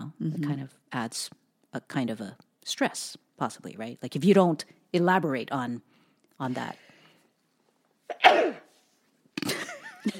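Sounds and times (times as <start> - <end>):
speech: 0.2 - 6.9
person sneezing: 8.1 - 8.8.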